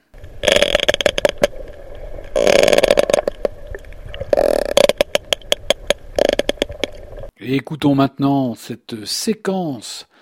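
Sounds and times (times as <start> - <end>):
sperm whales exchanging trains of sharp clicks underwater: 0.2 - 7.2
speech: 7.5 - 10.1.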